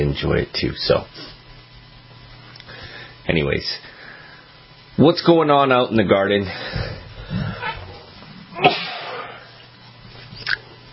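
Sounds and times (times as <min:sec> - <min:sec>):
speech: 0:00.1 - 0:01.4, 0:03.3 - 0:03.9, 0:05.0 - 0:07.0
person sneezing: 0:08.5 - 0:09.5.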